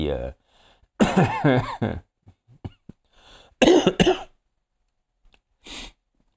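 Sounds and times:
speech: 0.0s - 0.4s, 1.0s - 2.1s, 3.6s - 4.3s
person coughing: 1.0s - 1.8s, 3.6s - 4.3s.

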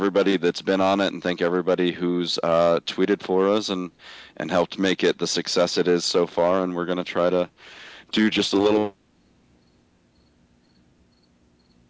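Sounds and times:
speech: 0.0s - 9.0s
low hiss: 0.0s - 11.8s
crickets chirping in high trills: 9.2s - 11.8s.

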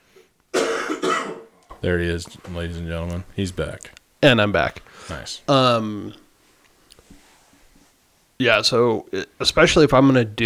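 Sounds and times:
person coughing: 0.5s - 1.6s
speech: 1.8s - 6.2s, 8.4s - 10.4s.

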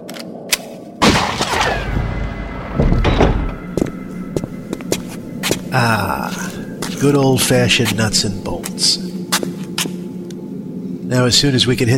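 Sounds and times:
sharp metallic bang from manual door lock being wrenched out: 1.0s - 5.6s
heavy clunk: 1.4s - 4.5s
speech: 5.7s - 9.0s, 11.1s - 11.9s.

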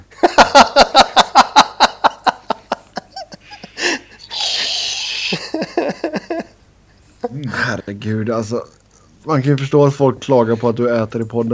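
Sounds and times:
rhythmic breathy laughter: 0.0s - 6.6s
speech: 0.5s - 1.1s, 8.3s - 11.5s
whipped cream spray can hissing a pressurized burst: 4.2s - 5.6s.

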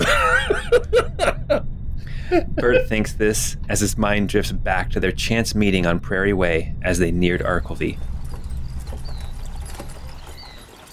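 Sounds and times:
laughter: 0.0s - 1.6s, 2.3s - 3.0s
low rumble: 0.0s - 10.8s
speech: 2.3s - 8.1s
faint high chirps: 7.4s - 10.9s
horse hooves clip-clopping on a hard road: 8.1s - 10.9s.

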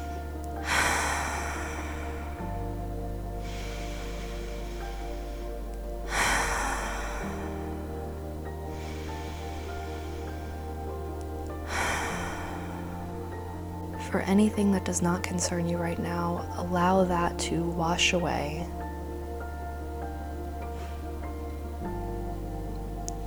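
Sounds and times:
deep slow cleansing breaths during meditation: 0.0s - 17.0s, 18.7s - 23.2s
soft sustained musical drone: 0.0s - 23.2s
speech: 14.1s - 18.8s.

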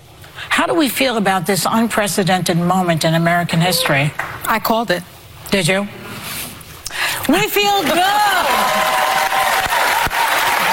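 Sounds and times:
speech: 0.6s - 6.0s, 7.3s - 8.9s
audience applause and cheering from a crowd: 7.7s - 10.7s.

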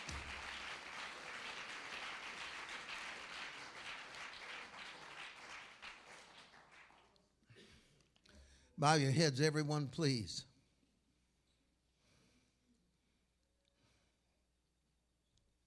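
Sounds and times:
crowd clapping: 0.0s - 7.1s
speech: 8.8s - 10.5s.

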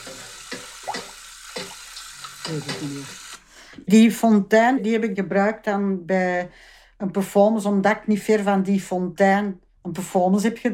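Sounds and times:
water running into a sink: 0.0s - 3.4s
speech: 2.5s - 3.2s, 3.8s - 10.7s.

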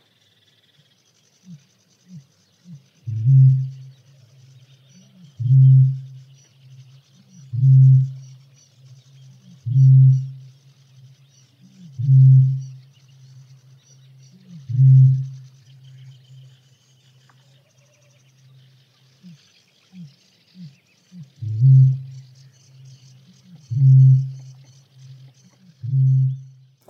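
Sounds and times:
bird call of deep booming hoots: 1.4s - 4.0s, 5.0s - 6.3s, 7.3s - 8.3s, 9.4s - 10.5s, 11.7s - 12.8s, 14.4s - 15.5s, 19.2s - 22.2s, 23.4s - 26.8s.

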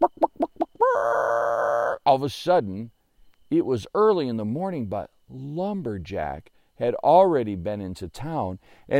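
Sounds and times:
chickens clucking: 0.0s - 2.0s
speech: 2.1s - 8.9s.

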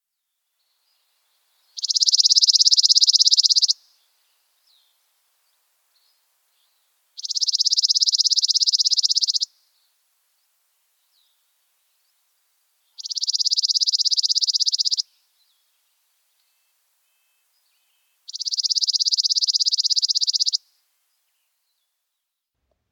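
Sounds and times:
bird singing high buzzy trills: 1.8s - 3.8s, 7.2s - 9.5s, 13.0s - 15.0s, 18.3s - 20.6s.

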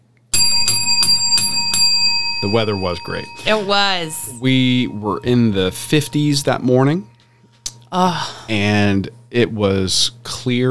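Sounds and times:
bell clanging: 0.4s - 7.3s
speech: 2.4s - 7.1s, 7.9s - 10.6s.

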